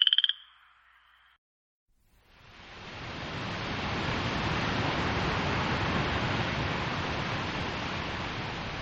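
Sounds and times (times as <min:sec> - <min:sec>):
frogs croaking: 0:00.0 - 0:01.4
steady broad rushing noise: 0:02.4 - 0:08.7.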